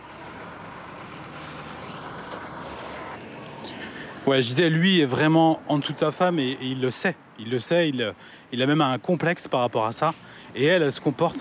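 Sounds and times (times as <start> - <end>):
large bus engine rumble passing on a busy roadside: 0.0 - 7.5, 9.8 - 11.3
continuous traffic noise and road roar on a busy roadside: 0.0 - 11.3
speech: 4.3 - 11.3.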